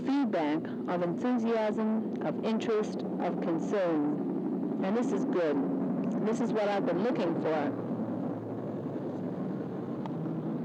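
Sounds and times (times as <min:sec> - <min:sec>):
helicopters droning overhead heard from indoors: 0:00.0 - 0:10.6
speech: 0:00.3 - 0:07.8.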